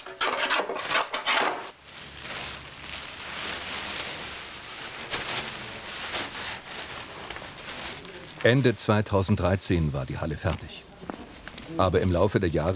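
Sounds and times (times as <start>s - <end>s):
wood rasping and scraping as men cut a wooden boat hull template: 0.0s - 1.6s
speech: 8.4s - 11.0s, 11.7s - 12.7s.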